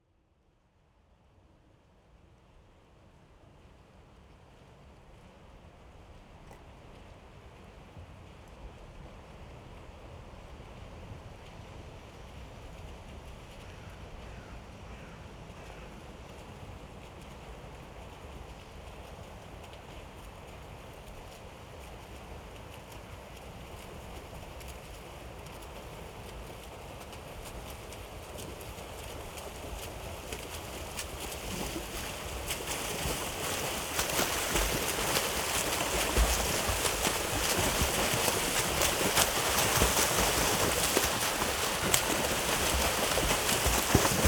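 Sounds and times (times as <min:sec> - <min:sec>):
swimmers swimming continuously: 0:28.3 - 0:44.2
water rush: 0:31.0 - 0:44.2.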